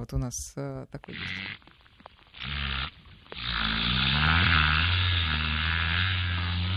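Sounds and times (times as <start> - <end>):
speech: 0.0 - 1.5
orca imitating a boat engine: 2.4 - 6.7.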